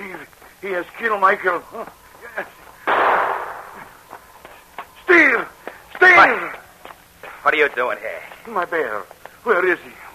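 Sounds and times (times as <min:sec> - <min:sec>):
speech: 0:00.6 - 0:02.6, 0:07.4 - 0:10.1
single gunshot in an audio drama at the opening of a mine: 0:02.9 - 0:04.0.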